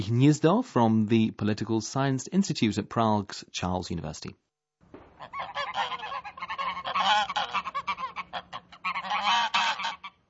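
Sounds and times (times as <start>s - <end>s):
speech: 0.0s - 4.4s
flock of geese honking: 5.2s - 10.2s.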